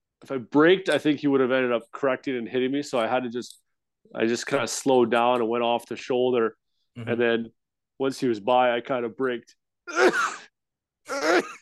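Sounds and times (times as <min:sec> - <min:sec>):
speech: 0:00.3 - 0:10.5
sneezes: 0:09.9 - 0:10.5.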